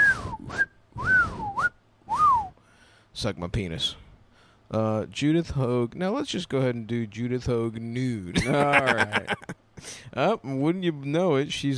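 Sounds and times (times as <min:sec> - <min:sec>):
person whistling with the mouth imitating a blown whistle: 0:00.0 - 0:02.6
speech: 0:03.2 - 0:04.0, 0:04.7 - 0:11.7
laughter: 0:08.3 - 0:09.6.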